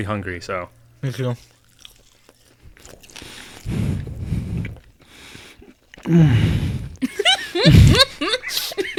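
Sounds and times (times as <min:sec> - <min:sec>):
speech: 0:00.0 - 0:01.6, 0:06.1 - 0:08.3
wet chewing and biting of hot wings: 0:01.4 - 0:06.1
heavy breathing while eating hot wings: 0:03.2 - 0:07.0, 0:07.6 - 0:08.4.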